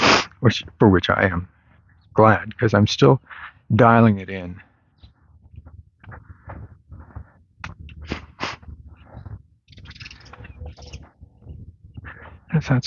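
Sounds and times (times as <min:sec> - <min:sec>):
speech: 0:00.4 - 0:01.5, 0:02.2 - 0:04.7, 0:12.5 - 0:12.8
steady low rumble of outdoor noise: 0:00.4 - 0:12.8
sparrows chirping in the grass: 0:00.6 - 0:03.7, 0:04.3 - 0:06.4, 0:08.3 - 0:12.6.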